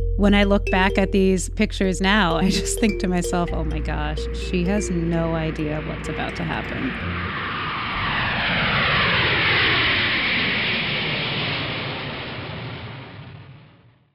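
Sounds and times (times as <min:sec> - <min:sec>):
speech: 0:00.2 - 0:07.4
airplane engine roar: 0:03.5 - 0:13.1.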